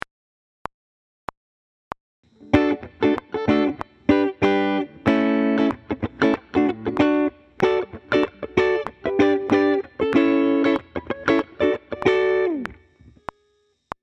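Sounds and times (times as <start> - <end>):
funk music with voice leading: 2.4 - 12.7.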